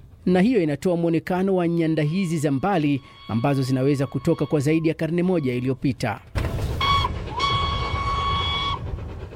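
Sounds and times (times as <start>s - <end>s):
continuous rumbling steam train noise: 0.0s - 9.3s
speech: 0.2s - 6.4s
departing steam locomotive whistle on a main line: 2.3s - 5.5s, 6.8s - 9.0s.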